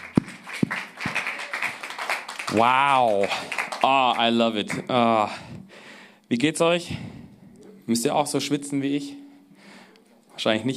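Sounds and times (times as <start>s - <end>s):
crowd applauding: 0.0s - 5.0s
sharp separate claps: 0.0s - 5.0s
speech: 2.5s - 5.6s, 6.3s - 7.1s, 7.9s - 9.2s, 10.4s - 10.7s.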